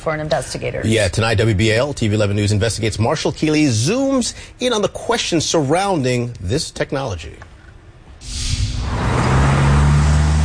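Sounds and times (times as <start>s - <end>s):
speech: 0.0s - 7.5s
brake release hiss: 8.2s - 9.4s
busy street traffic engines rumbling: 8.2s - 10.4s.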